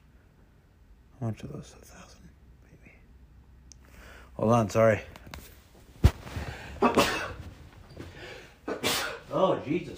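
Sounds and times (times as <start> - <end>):
speech: 1.2 - 2.2, 4.4 - 5.2, 9.4 - 9.9
faint breathing: 3.8 - 4.4, 6.3 - 6.9, 7.9 - 8.6
person sneezing: 6.6 - 7.5, 8.6 - 9.3.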